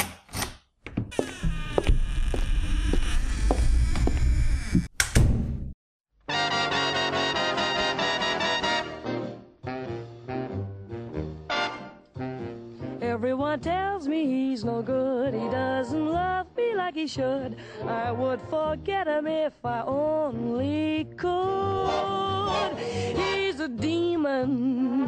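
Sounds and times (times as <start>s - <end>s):
door opened and shut with knocking thuds and rattles: 0.0s - 5.7s
music: 6.2s - 25.0s
speech: 17.0s - 25.0s.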